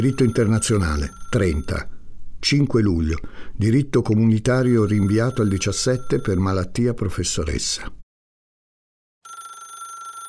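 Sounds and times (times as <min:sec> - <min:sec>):
telephone bell ringing: 0:00.0 - 0:01.9, 0:04.6 - 0:06.5, 0:09.2 - 0:10.2
speech: 0:00.0 - 0:08.0.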